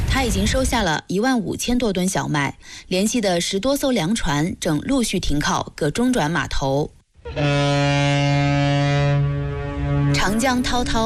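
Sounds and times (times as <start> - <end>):
speech: 0.2 - 8.2, 10.2 - 11.0
deep cargo ship horn blasting as it departs: 7.2 - 11.0.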